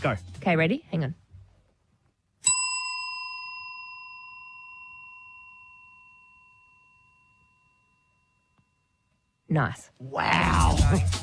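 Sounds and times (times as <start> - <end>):
speech: 0.0 - 1.2, 9.5 - 11.2
small hand bell ringing: 2.4 - 9.5.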